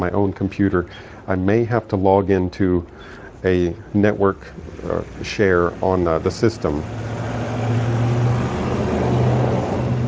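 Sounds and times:
speech: 0:00.0 - 0:07.8
truck passing outside engine drone: 0:03.7 - 0:10.0.

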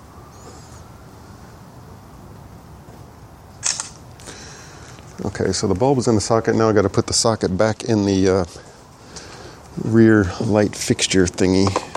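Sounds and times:
hiss: 0:00.0 - 0:11.9
camera shutter clicking: 0:03.6 - 0:04.0
speech: 0:05.2 - 0:08.7, 0:09.8 - 0:11.9.

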